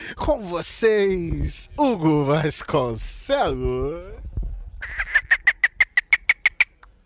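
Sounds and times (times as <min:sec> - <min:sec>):
speech: 0:00.1 - 0:05.1
actor and singer imitating dolphin chattering squeaks: 0:04.8 - 0:06.8.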